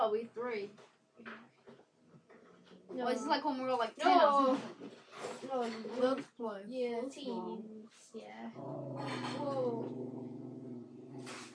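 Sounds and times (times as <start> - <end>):
speech: 0.0 - 1.6, 2.9 - 10.4
dog whining and grumbling: 8.7 - 11.5.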